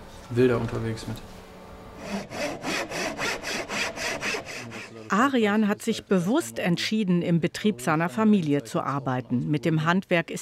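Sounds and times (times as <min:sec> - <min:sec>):
speech: 0:00.3 - 0:01.4, 0:05.1 - 0:10.3
hand saw rasping through wood: 0:02.0 - 0:05.0.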